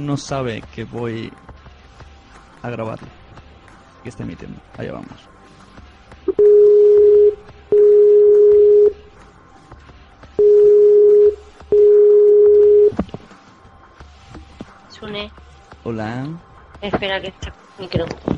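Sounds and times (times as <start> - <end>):
speech: 0.0 - 1.5, 2.6 - 3.2, 4.0 - 5.3, 15.9 - 18.3
telephone ringback tones while placing a call: 6.3 - 9.0, 10.4 - 13.0.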